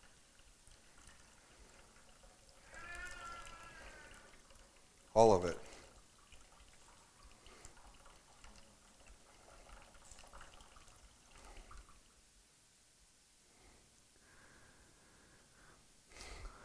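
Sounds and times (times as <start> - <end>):
bottled water poured out of a bottle: 0.0 - 12.2
speech: 5.2 - 5.7.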